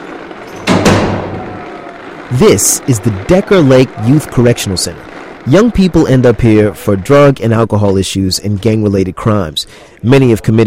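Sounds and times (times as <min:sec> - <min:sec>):
heavy locked door clunking open and banging shut: 0:00.5 - 0:01.5
speech: 0:02.3 - 0:10.6.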